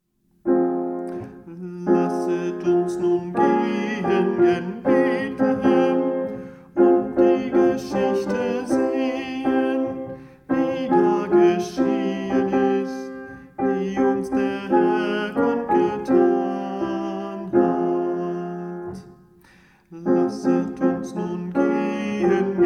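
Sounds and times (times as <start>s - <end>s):
soprano voice singing a chorale: 1.1s - 19.1s, 19.9s - 22.6s.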